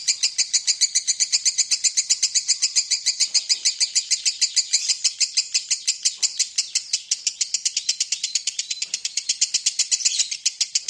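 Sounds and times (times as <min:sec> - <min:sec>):
lovebird chattering song in ngekek style used as a lure song: 0:00.0 - 0:10.8.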